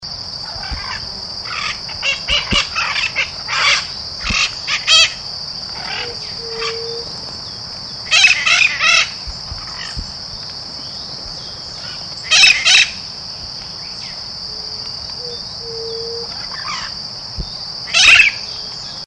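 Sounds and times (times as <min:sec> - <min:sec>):
mitred parakeet: 0:00.5 - 0:07.1, 0:08.0 - 0:10.0, 0:11.6 - 0:13.0, 0:17.9 - 0:18.5.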